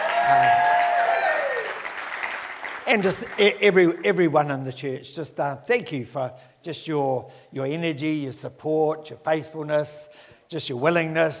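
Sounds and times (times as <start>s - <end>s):
audience applauding: 0.0s - 4.0s
speech: 0.3s - 0.7s, 2.9s - 11.3s.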